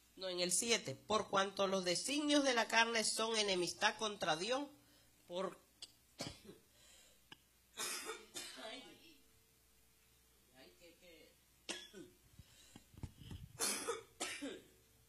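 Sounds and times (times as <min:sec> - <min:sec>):
speech: 0:00.2 - 0:05.6
person breathing: 0:04.8 - 0:05.2, 0:06.7 - 0:07.3, 0:12.3 - 0:13.6
person coughing fit brought on by eating something sweet: 0:07.8 - 0:08.7, 0:11.7 - 0:12.1, 0:13.6 - 0:14.8.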